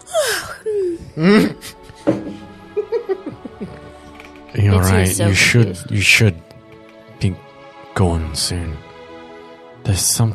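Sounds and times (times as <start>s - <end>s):
person giving a drawn-out breathy yawn: 0.0s - 1.6s
speech: 1.2s - 1.8s, 5.0s - 6.5s, 7.2s - 7.4s, 8.0s - 8.9s, 9.8s - 10.3s
laughter: 2.6s - 4.4s.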